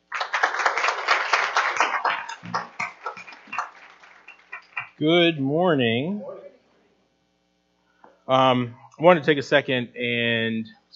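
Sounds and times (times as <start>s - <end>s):
crowd applauding in a large room: 0.0s - 5.0s
speech: 5.0s - 6.3s, 8.3s - 10.8s.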